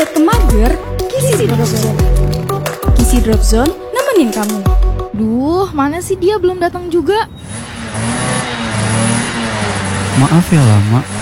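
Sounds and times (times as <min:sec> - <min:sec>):
motorcycle engine revving: 0:00.0 - 0:03.9, 0:06.6 - 0:11.1
speech: 0:03.3 - 0:08.2, 0:10.2 - 0:11.1.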